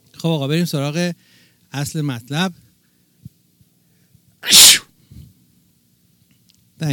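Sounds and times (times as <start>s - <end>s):
speech: 0.2s - 2.6s
person sneezing: 4.4s - 4.8s.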